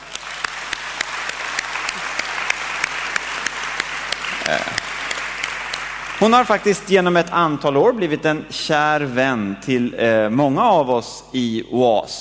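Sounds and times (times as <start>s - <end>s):
audience applause welcoming a guest at a morning gathering: 0.0s - 6.8s
speech: 4.5s - 4.9s, 6.2s - 12.1s.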